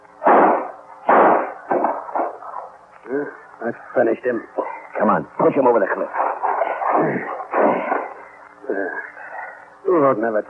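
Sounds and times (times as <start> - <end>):
gunshots from a gun held to a man's head: 0.2 - 2.4, 6.9 - 8.2
speech: 3.7 - 6.3, 7.0 - 7.9, 10.0 - 10.4.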